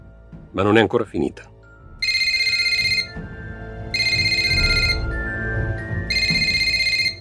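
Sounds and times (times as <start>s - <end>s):
speech: 0.5s - 1.5s
telephone ringing in bright buzzing bursts: 2.0s - 3.2s, 3.9s - 5.1s, 6.1s - 7.2s.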